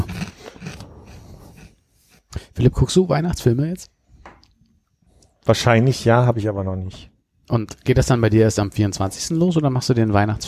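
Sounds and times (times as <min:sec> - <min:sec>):
fortune cookie bitten and chewed: 0:00.0 - 0:01.8
speech: 0:02.6 - 0:04.0, 0:05.5 - 0:10.4.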